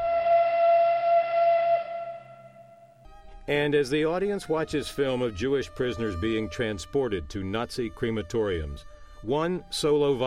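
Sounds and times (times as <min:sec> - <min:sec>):
train whistle wailing: 0:00.0 - 0:03.0
speech: 0:03.5 - 0:10.2.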